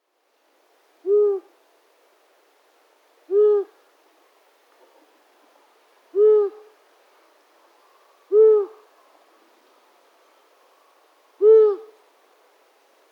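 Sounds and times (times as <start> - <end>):
long-eared owl Asio otus hooting: 1.0 - 1.5, 3.3 - 3.8, 6.1 - 6.7, 8.3 - 8.9, 11.4 - 12.0.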